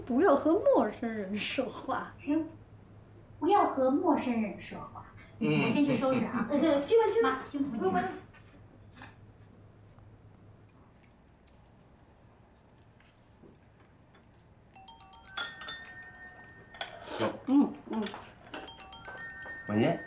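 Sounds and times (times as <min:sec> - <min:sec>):
speech: 0:00.1 - 0:02.6, 0:03.4 - 0:08.2
phone ringing with an electronic melody: 0:14.8 - 0:20.0.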